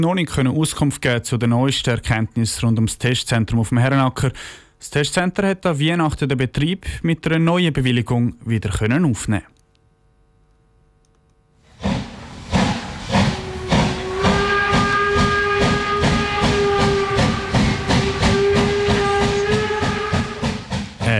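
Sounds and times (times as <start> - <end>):
speech: 0.0 - 9.6
steam locomotive chuffing: 11.7 - 21.1
long loud steam locomotive whistle: 12.3 - 20.7.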